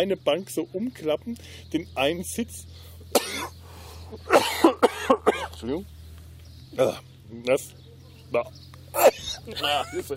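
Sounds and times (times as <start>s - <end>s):
speech: 0.0s - 6.0s, 6.7s - 10.1s
person coughing harshly: 3.2s - 3.5s, 4.3s - 5.6s.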